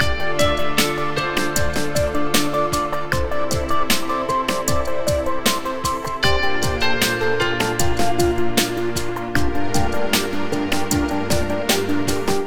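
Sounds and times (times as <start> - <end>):
corporate music loop: 0.0 - 12.4.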